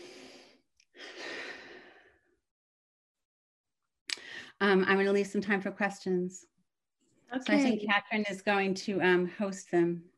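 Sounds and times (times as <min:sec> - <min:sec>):
deep breath: 0:00.0 - 0:02.4
speech: 0:04.6 - 0:06.5, 0:07.3 - 0:10.1.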